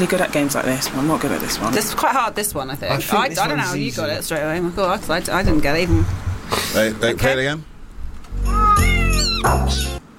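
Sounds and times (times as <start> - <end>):
speech: 0.0 - 7.7
cat meows forming a Christmas carol melody: 8.4 - 10.0.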